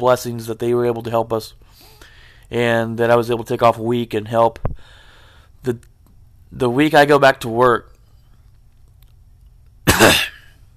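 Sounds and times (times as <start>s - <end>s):
speech: 0.0s - 5.0s, 5.6s - 5.9s, 6.5s - 7.9s
throat-clearing cough from a tickly throat: 9.9s - 10.6s.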